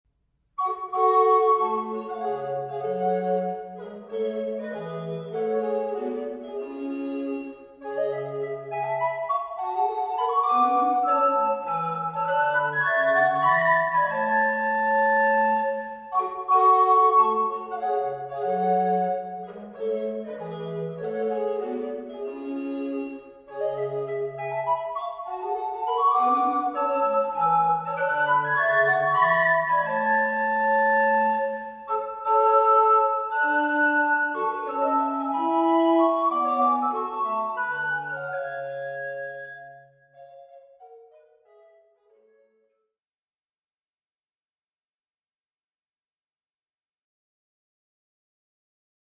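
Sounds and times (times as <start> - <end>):
recorder woodwind instrument playing: 0.6 - 42.3.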